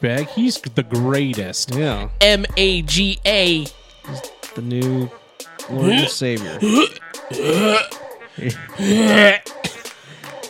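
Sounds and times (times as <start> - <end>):
speech: 0.0 - 9.5
person coughing and choking: 5.8 - 9.9.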